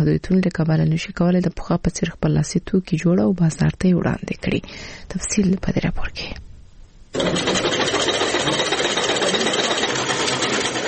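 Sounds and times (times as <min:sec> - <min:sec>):
speech: 0:00.0 - 0:06.5, 0:07.1 - 0:08.0
sewing machines running in a tailoring workshop: 0:07.2 - 0:10.8.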